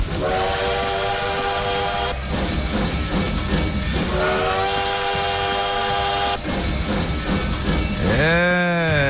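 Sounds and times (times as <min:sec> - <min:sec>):
bullet train horn blast: 0:00.0 - 0:02.2, 0:04.1 - 0:06.4
bullet train roaring past: 0:00.0 - 0:09.0.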